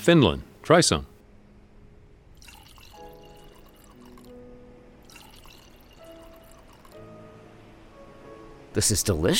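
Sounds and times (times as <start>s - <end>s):
speech: 0.0s - 1.1s, 8.8s - 9.3s
water poured from a pitcher into a glass: 2.4s - 4.3s, 5.0s - 7.0s.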